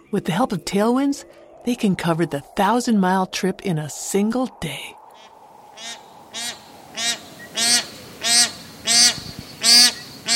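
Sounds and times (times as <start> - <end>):
speech: 0.1 - 5.0, 5.8 - 6.0
bar-headed goose honking: 5.8 - 10.3.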